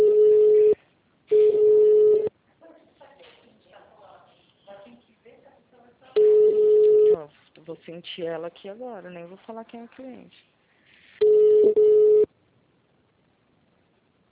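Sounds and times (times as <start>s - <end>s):
ringback tone of an outgoing telephone call: 0.0s - 2.3s, 6.2s - 7.2s, 11.2s - 12.3s
speech: 7.9s - 10.5s.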